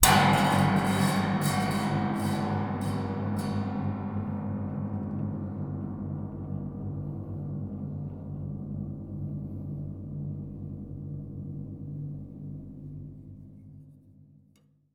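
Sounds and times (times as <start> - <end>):
short cinematic metal impact strike: 0.0 - 11.7.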